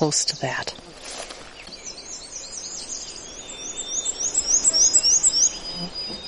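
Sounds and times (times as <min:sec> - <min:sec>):
speech: 0:00.0 - 0:01.3
black-and-white warbler singing high thin squeaky weetsa song: 0:01.6 - 0:06.2.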